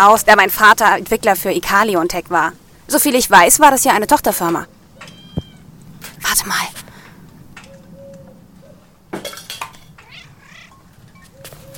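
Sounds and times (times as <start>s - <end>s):
speech: 0.0s - 5.1s, 6.3s - 6.8s
cat meowing: 5.0s - 5.7s, 10.0s - 11.4s.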